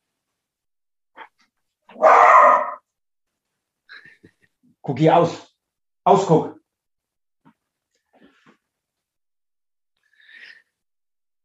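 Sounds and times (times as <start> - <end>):
dog barking: 1.9 - 2.8
speech: 4.9 - 5.5, 6.1 - 6.6.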